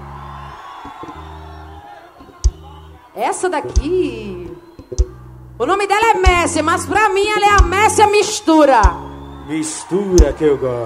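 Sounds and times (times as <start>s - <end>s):
audience shouting and whooping: 0.0s - 3.5s, 4.2s - 5.4s, 7.8s - 10.8s
speech: 3.2s - 4.4s, 5.6s - 10.8s.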